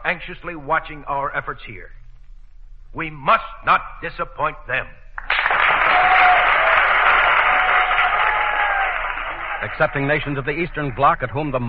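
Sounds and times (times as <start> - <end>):
speech: 0.1 - 2.0, 2.9 - 6.2, 9.6 - 11.6
assembly of nations applauding vigorously: 5.2 - 11.0.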